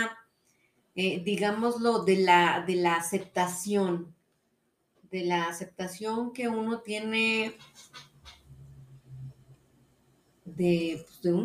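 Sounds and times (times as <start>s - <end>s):
speech: 1.0s - 4.2s, 5.1s - 8.1s, 10.5s - 11.4s
chair creaking and squeaking: 7.5s - 9.5s.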